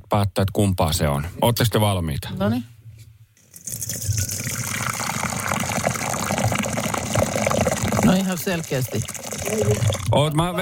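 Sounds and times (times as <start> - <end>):
speech: 0.1 - 2.7, 8.2 - 10.5
liquid poured into a container: 3.4 - 10.3.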